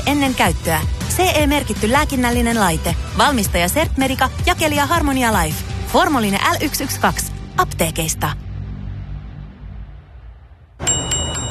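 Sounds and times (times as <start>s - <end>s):
speech: 0.1s - 8.4s
bright ringing metallic chime clinking: 10.8s - 11.4s.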